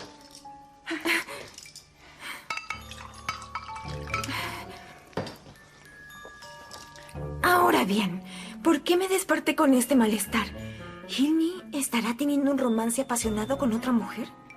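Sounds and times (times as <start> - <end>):
glass clinking as it is handled and set down: 1.4 - 7.2
water poured into a glass: 2.7 - 4.6
speech: 7.8 - 14.4.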